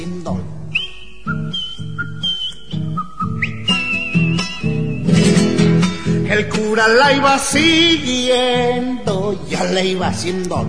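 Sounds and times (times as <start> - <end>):
person whistling a bright sliding melody: 0.7 - 5.3
speech: 6.4 - 10.6.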